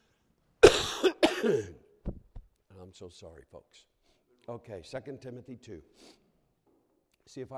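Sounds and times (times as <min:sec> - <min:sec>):
man coughing: 0:00.6 - 0:01.9
speech: 0:01.0 - 0:02.2, 0:02.9 - 0:03.9, 0:04.5 - 0:06.2, 0:07.3 - 0:07.5.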